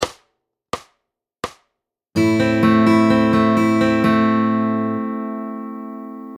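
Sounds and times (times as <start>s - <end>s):
Spanish style fingerstyle guitar: 2.2s - 6.3s.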